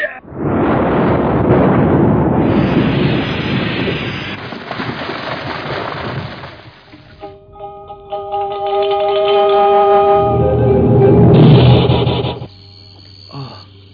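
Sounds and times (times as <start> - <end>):
roaring explosion from a sword strike: 0.2 - 6.7
sustained shimmering metallic ringing tone: 7.2 - 12.9.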